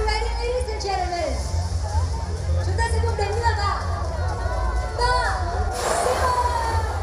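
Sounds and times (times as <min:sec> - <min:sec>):
crowd cheering and shouting at a groundbreaking ceremony: 0:00.0 - 0:07.0.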